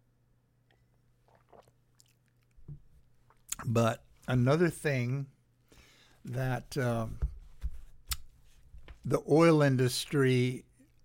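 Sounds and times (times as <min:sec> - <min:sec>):
sipping a drink: 0:00.6 - 0:03.8
speech: 0:03.6 - 0:05.4, 0:06.2 - 0:07.2, 0:09.0 - 0:10.7.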